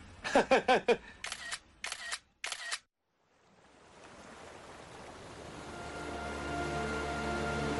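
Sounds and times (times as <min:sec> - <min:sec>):
camera shutter clicking while taking photos by a bay shore: 0:01.2 - 0:02.9
soft steady rush of water by a bay shore: 0:03.0 - 0:07.7.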